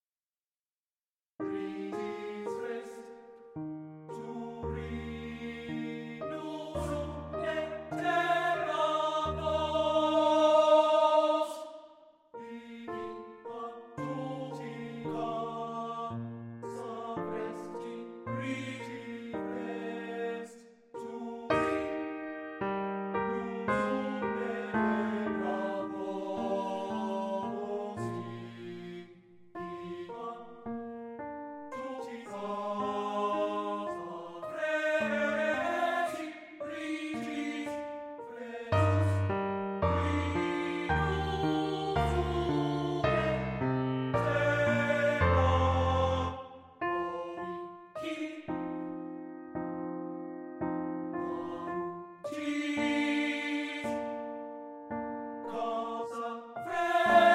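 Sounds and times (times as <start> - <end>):
piano: 1.4 - 57.3
person singing a lullaby: 4.1 - 11.7, 12.4 - 22.0, 23.3 - 29.0, 31.8 - 43.5, 44.1 - 48.5, 55.4 - 57.3.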